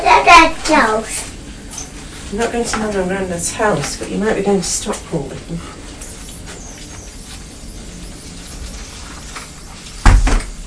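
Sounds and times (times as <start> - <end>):
speech: 0.4 - 1.3, 2.3 - 5.8
door shut with a solid thud and rattling in its frame: 9.3 - 10.6.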